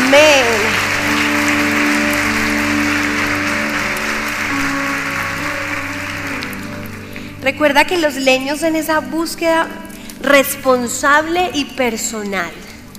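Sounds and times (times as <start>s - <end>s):
audience applauding loudly at a church service: 0.0s - 7.4s
steady held chords from a keyboard or organ: 0.0s - 10.2s
speech: 7.5s - 12.7s.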